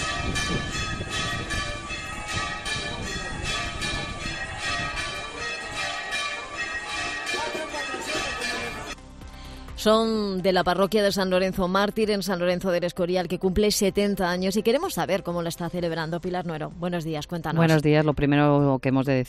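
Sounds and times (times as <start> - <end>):
church bells pealing: 0.0 - 9.0
speech: 9.8 - 19.2.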